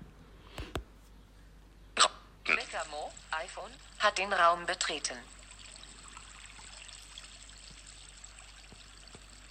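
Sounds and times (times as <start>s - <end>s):
water trickling and splashing from a village fountain: 2.7s - 9.5s
speech: 4.0s - 5.4s.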